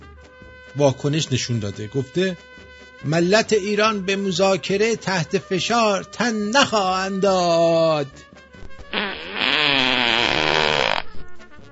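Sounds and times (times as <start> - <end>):
speech: 0.7 - 8.3
fart sound effect: 8.7 - 11.3.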